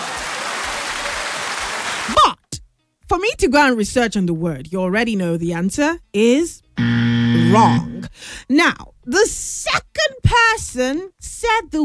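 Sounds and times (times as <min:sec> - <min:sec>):
audience applause at a word-spelling quiz: 0:00.0 - 0:02.2
speech: 0:03.2 - 0:06.9, 0:07.5 - 0:11.8.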